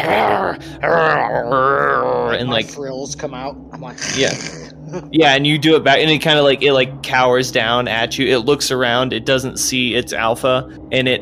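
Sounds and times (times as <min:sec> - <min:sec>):
person imitating a dog growl with a raspy throaty rumble: 0:00.0 - 0:02.7, 0:04.0 - 0:04.7
speech: 0:00.1 - 0:11.2.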